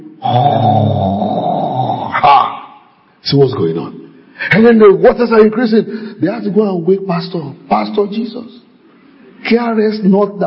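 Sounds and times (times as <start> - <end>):
voice imitating snoring: 0.2 - 2.2
speech: 0.3 - 0.7, 3.3 - 8.6, 9.4 - 10.4.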